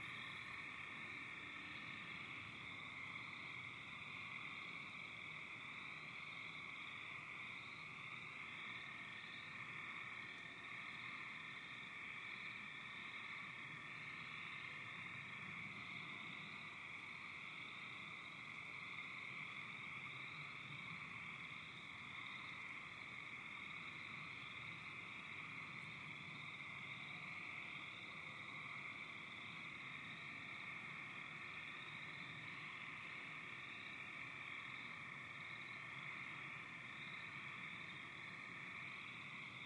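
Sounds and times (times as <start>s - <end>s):
frogs: 0.0s - 39.6s.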